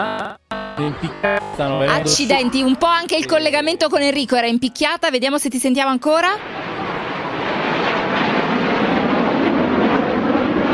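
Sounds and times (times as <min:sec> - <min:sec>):
speech: 0:00.8 - 0:06.6
aerobatic jet aircraft flying overhead during an air show display: 0:06.4 - 0:10.7.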